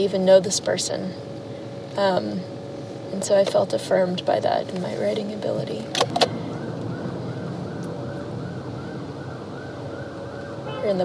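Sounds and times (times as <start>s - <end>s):
speech: 0.0s - 1.4s, 2.0s - 6.4s, 10.8s - 11.0s
steady rumble of traffic: 0.0s - 11.0s
ambulance siren wailing: 6.1s - 11.0s.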